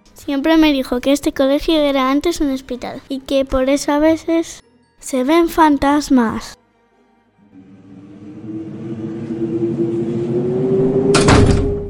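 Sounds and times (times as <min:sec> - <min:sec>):
speech: 0:00.2 - 0:06.6
faint rising hum: 0:07.5 - 0:11.8
low steady rumble: 0:07.5 - 0:11.8
door slamming shut: 0:11.0 - 0:11.8.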